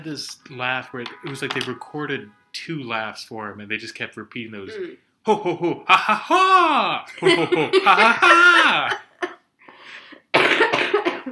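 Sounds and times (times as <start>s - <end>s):
speech: 0.0s - 9.0s
laughter: 5.3s - 9.4s
person coughing: 10.4s - 11.2s.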